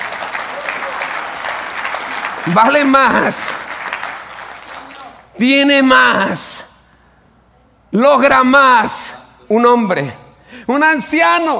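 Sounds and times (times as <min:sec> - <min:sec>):
audience applauding: 0:00.0 - 0:05.3
speech: 0:02.4 - 0:03.6, 0:05.4 - 0:06.6, 0:07.9 - 0:11.5.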